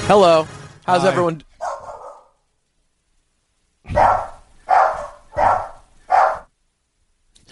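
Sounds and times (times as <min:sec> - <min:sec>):
speech: 0:00.1 - 0:01.5
dog barking: 0:01.6 - 0:02.4, 0:03.9 - 0:06.5.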